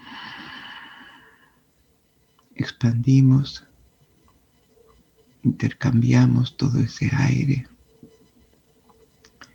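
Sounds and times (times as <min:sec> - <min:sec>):
person breathing: 0:00.0 - 0:01.6
speech: 0:02.6 - 0:03.7, 0:05.5 - 0:07.7.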